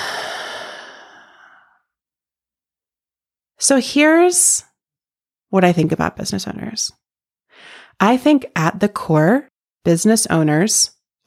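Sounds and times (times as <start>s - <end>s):
deep breath in and out: 0.0s - 1.9s, 7.5s - 7.9s
speech: 3.6s - 4.7s, 5.5s - 7.0s, 7.6s - 11.2s.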